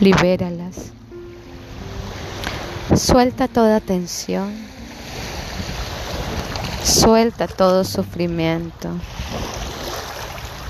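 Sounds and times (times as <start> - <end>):
speech: 0.0 - 1.0, 2.9 - 4.7, 6.8 - 9.7
ocean waves: 0.0 - 10.6.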